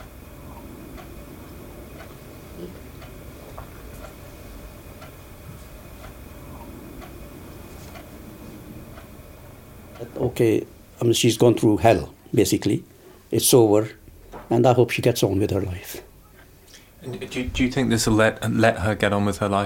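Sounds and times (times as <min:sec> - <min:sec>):
clock ticking: 0:00.0 - 0:10.4
constant low room hum: 0:00.0 - 0:19.6
speech: 0:10.0 - 0:16.1, 0:17.0 - 0:19.6.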